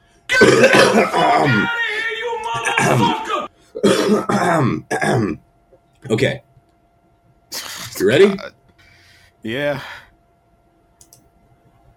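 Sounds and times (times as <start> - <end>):
person clearing throat loudly and theatrically: 0.3 - 1.5, 3.8 - 5.4
speech: 0.4 - 1.8, 2.7 - 5.4, 6.0 - 6.5, 7.5 - 8.6, 9.4 - 10.0.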